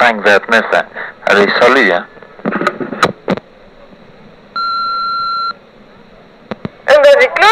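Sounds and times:
speech: 0:00.1 - 0:03.0
answering machine beep: 0:04.6 - 0:05.6.

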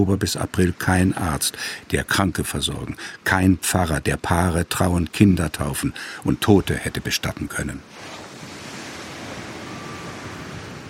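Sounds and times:
speech: 0:00.0 - 0:08.2
sea surf breaking on the beach at Village Bay, St. Kilda, Scotland: 0:07.9 - 0:10.8.

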